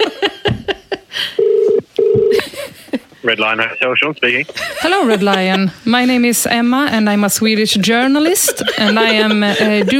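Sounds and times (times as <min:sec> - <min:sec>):
outgoing call telephone ringing tones: 0:01.4 - 0:02.4
speech: 0:03.3 - 0:09.9
laughter: 0:04.4 - 0:05.8, 0:08.2 - 0:09.9.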